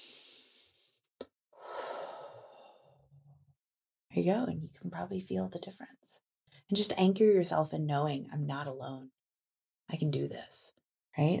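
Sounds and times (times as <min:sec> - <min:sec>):
deep breath during a calming exercise: 0:01.6 - 0:03.0
speech: 0:04.2 - 0:09.2, 0:09.9 - 0:11.3.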